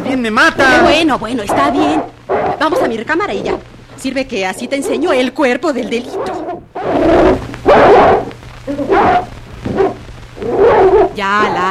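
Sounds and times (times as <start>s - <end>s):
faint steady hum: 0.0s - 11.6s
speech: 0.2s - 8.1s, 8.7s - 9.3s, 11.2s - 11.6s
dog barking: 0.7s - 2.9s, 7.6s - 11.2s.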